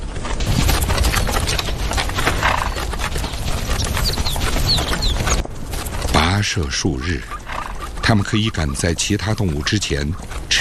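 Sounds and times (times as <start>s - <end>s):
Tibetan wild asses galloping hooves: 0.0s - 10.5s
speech: 6.4s - 7.4s, 8.0s - 10.5s.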